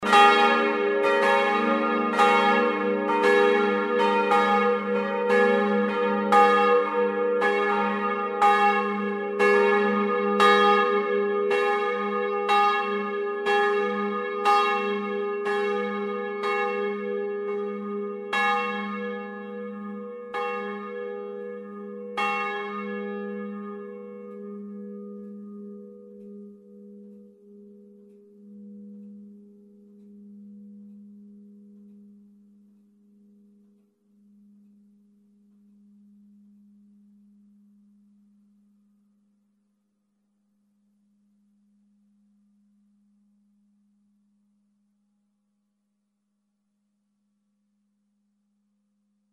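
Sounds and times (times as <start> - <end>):
multi-voice used church bells ringing: 0.0 - 32.3.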